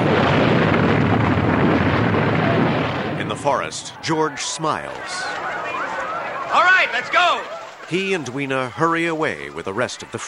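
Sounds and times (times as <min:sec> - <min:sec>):
explosion as the ground collapses into a cavern: 0:00.0 - 0:04.1
speech: 0:03.4 - 0:05.4, 0:06.5 - 0:10.2.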